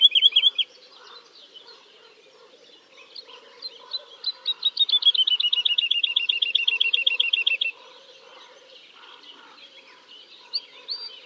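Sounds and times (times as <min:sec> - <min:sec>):
woodlark singing: 0:00.0 - 0:11.2.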